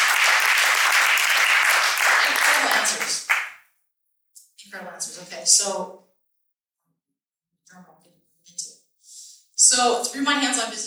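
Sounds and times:
audience applause from a room full of people: 0.0 - 3.6
speech: 5.5 - 6.0, 9.7 - 10.8.

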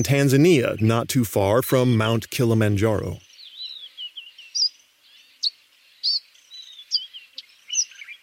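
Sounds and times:
speech: 0.0 - 3.3
Eastern Violet-backed Sunbird twittering in Tanzania near Mount Kilimanjaro: 0.0 - 8.2.

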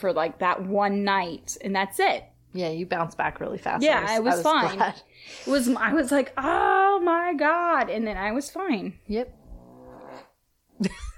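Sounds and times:
speech: 0.0 - 9.4, 10.8 - 11.1
dog snoring: 9.3 - 10.4.

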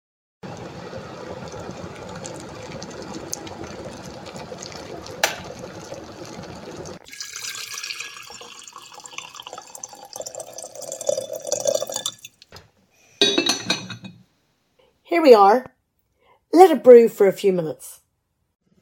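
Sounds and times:
water pouring and splashing while making a pot of tea: 0.4 - 12.5
speech: 15.2 - 15.7, 16.5 - 18.0.

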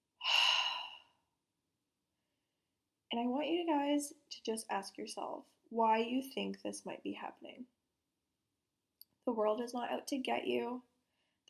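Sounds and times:
deep breath in and out: 0.2 - 1.1
speech: 3.1 - 7.7, 9.3 - 10.9.

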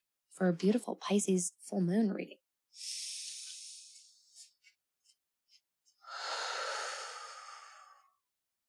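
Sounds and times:
speech: 0.4 - 3.2
person taking a deep cleansing breath during a guided breathing exercise: 2.7 - 4.5, 6.0 - 8.2.

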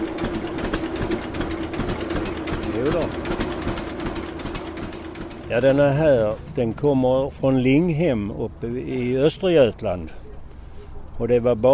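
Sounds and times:
slow two-cylinder tractor engine rebuilt from a wreck chugging at a fair: 0.0 - 8.2
speech: 5.5 - 10.2, 11.2 - 11.7.

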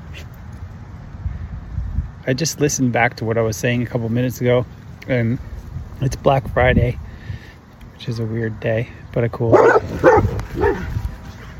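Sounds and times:
steady low outdoor rumble: 0.0 - 11.5
speech: 2.3 - 7.0, 8.0 - 10.9
dog barking in a park: 9.5 - 10.9.

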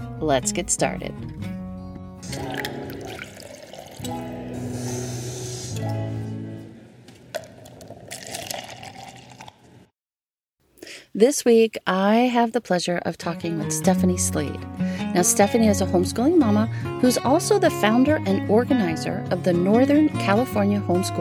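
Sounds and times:
speech: 0.2 - 1.6, 11.2 - 21.1
coffee pouring into a cup: 2.3 - 4.3, 7.3 - 9.7.

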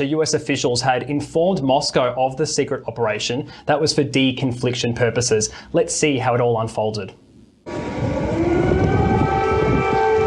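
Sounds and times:
speech: 0.0 - 7.2
rumbling noisy background in Kyiv Ukraine: 7.1 - 10.2
air raid sirens wailing in Kyiv Ukraine: 7.7 - 10.2.

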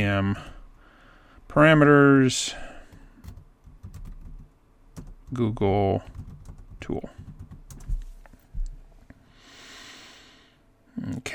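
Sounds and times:
speech: 0.0 - 0.6, 1.5 - 2.7, 5.3 - 6.2, 6.8 - 7.2, 11.0 - 11.3
typing on a computer keyboard: 2.9 - 5.4, 6.1 - 8.0.

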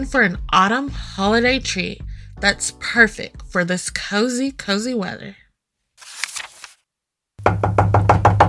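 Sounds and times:
speech: 0.0 - 5.4
soft rustling: 6.0 - 6.8
knocking on a wooden door: 7.4 - 8.4.

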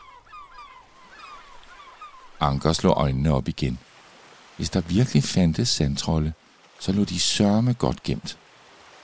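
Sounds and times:
flock of seagulls crying: 0.0 - 2.4
faint rushing of the sea: 0.0 - 9.0
wind: 0.0 - 9.0
speech: 2.4 - 3.9, 4.6 - 8.4.

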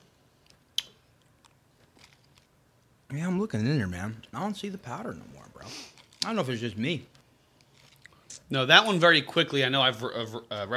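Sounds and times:
soft crackles of chewing hard sour candy: 0.4 - 2.5, 5.2 - 6.4, 7.1 - 8.4
person biting into hard sour candy: 0.5 - 2.5, 5.3 - 8.2
speech: 3.1 - 7.2, 8.5 - 10.7.

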